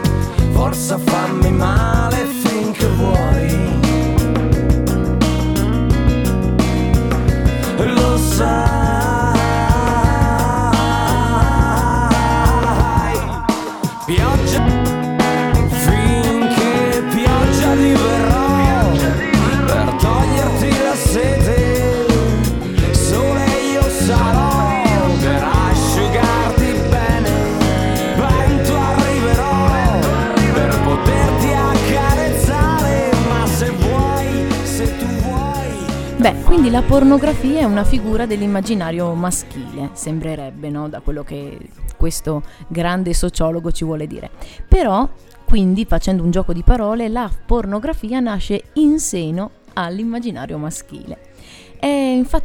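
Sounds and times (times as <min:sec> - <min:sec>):
Italian rock song with lead vocal sung in Italian: 0:00.0 - 0:40.0
speech: 0:00.7 - 0:02.0, 0:36.7 - 0:52.4.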